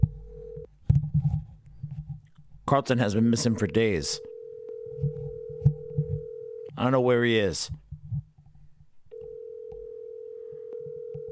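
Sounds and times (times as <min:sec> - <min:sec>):
electronic phone call ring tone: 0:00.2 - 0:00.7, 0:03.4 - 0:07.0, 0:09.1 - 0:11.2
speech: 0:02.7 - 0:04.3, 0:06.8 - 0:07.8.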